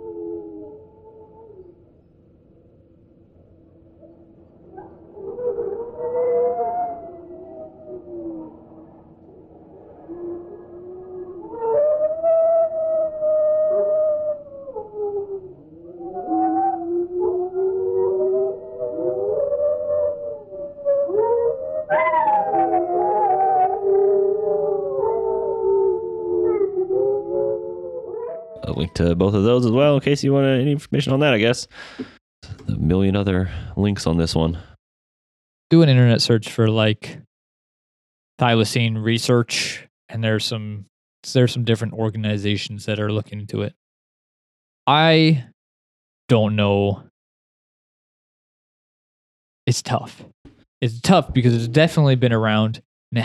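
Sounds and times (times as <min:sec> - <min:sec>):
singing dogs howling together: 0:00.0 - 0:01.8, 0:04.7 - 0:28.8
speech: 0:29.0 - 0:32.1, 0:32.7 - 0:34.7, 0:35.7 - 0:37.2, 0:38.4 - 0:43.8, 0:44.8 - 0:45.5, 0:46.3 - 0:47.1, 0:49.7 - 0:53.2.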